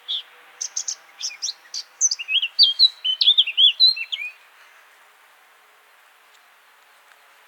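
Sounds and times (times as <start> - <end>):
Eurasian blackcap Sylvia atricapilla singing: 0.1 - 4.4.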